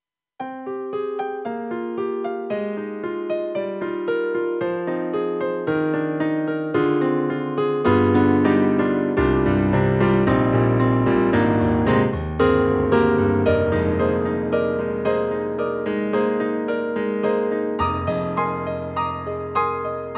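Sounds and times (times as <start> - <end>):
dark warm grand piano synthesizer sound: 0.4 - 20.1.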